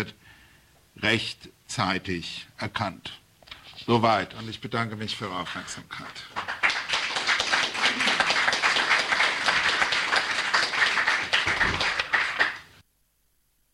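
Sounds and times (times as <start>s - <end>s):
speech: 0.0s - 0.3s, 1.0s - 3.2s, 3.8s - 6.5s
audience applause after a speech: 6.3s - 12.8s.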